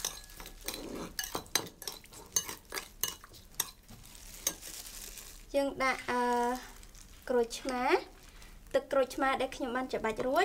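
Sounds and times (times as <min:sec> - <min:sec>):
spoon stirring a sweet-and-sour seasoning mixture: 0:00.0 - 0:04.9
speech: 0:05.6 - 0:06.7, 0:07.3 - 0:08.1, 0:08.7 - 0:10.4.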